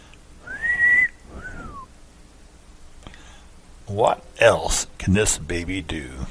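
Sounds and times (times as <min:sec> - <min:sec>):
person whistling: 0:00.4 - 0:01.9
speech: 0:03.9 - 0:06.3.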